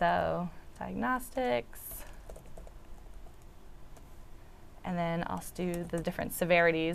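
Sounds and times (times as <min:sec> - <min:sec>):
speech: 0:00.0 - 0:02.0, 0:04.8 - 0:06.9
rapid typing on a computer keyboard during a coding session: 0:01.4 - 0:04.1, 0:05.4 - 0:06.2.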